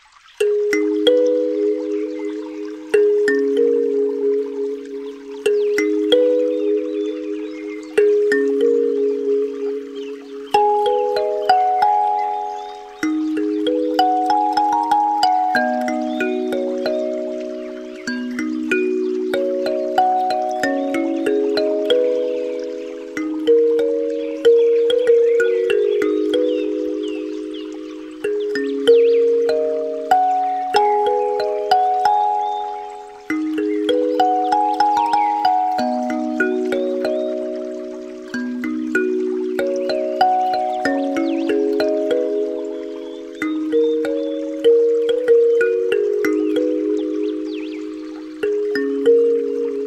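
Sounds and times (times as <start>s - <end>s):
relaxing Chinese pipa music for sleeping: 0.4s - 49.8s.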